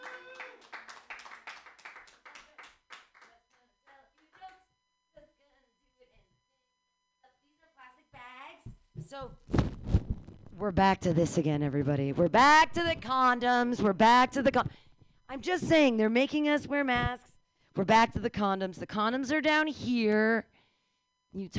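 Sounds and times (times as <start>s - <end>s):
audience voices and cheering: 0.0s - 0.6s
audience applause: 0.0s - 3.3s
speech: 9.1s - 9.7s, 10.6s - 20.5s, 21.3s - 21.5s.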